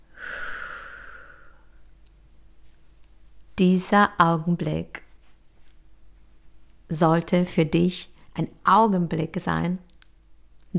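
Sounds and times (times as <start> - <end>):
deep breath in and out during a guided breathing exercise: 0.0 - 1.8
speech: 3.6 - 5.0, 6.9 - 9.9.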